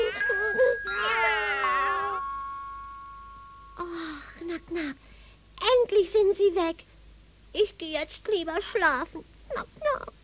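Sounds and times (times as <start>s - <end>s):
several cats meowing and yowling in chorus: 0.0s - 2.3s
steady high ringing tone: 0.0s - 5.2s
speech: 6.0s - 7.0s, 7.6s - 10.1s.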